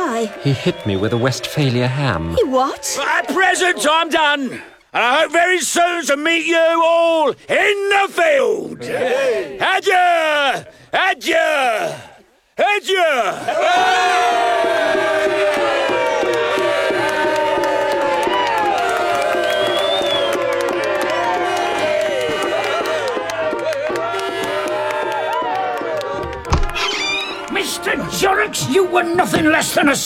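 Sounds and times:
large crowd cheering and shouting: 0.0 - 4.2, 12.8 - 30.0
speech: 0.2 - 15.4, 27.8 - 30.0.

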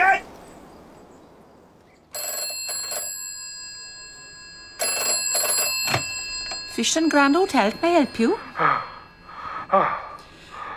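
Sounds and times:
thin telephone-line hiss: 2.2 - 10.5
speech: 6.8 - 8.7
heavy breath of a caller on a telephone call: 8.4 - 10.7.

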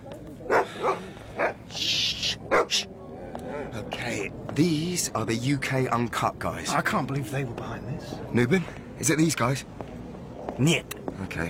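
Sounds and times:
hiss: 0.1 - 11.0
dog barking: 0.5 - 1.6, 2.5 - 2.9
speech: 2.7 - 2.9, 4.6 - 9.8, 10.6 - 11.4.

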